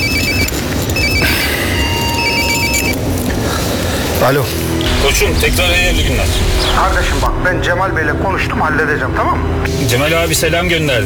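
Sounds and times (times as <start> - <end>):
telephone ringing in electronic trills: 0.0 - 3.4
loud steady rumbling background: 3.2 - 10.2
speech: 4.2 - 11.0.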